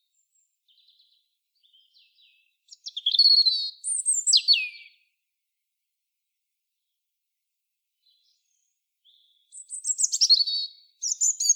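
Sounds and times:
European robin Erithacus rubecula singing sliding whistles and trills: 1.7 - 5.0, 9.1 - 11.5.

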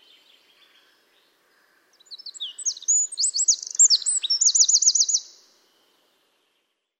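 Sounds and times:
Eurasian wren Troglodytes troglodytes singing: 2.0 - 5.4.

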